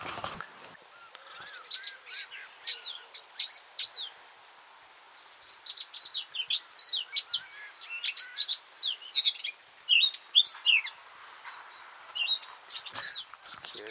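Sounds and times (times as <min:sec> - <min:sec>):
blackcap singing a rich warbling song: 0:01.3 - 0:04.1, 0:05.4 - 0:11.0, 0:12.1 - 0:13.8.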